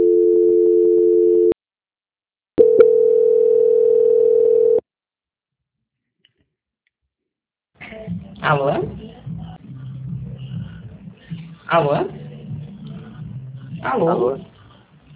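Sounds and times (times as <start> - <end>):
steady mid-pitched telephone tones during a call transfer: 0.0 - 1.6, 2.6 - 4.8
speech: 8.4 - 9.0, 11.7 - 12.2, 13.8 - 14.5.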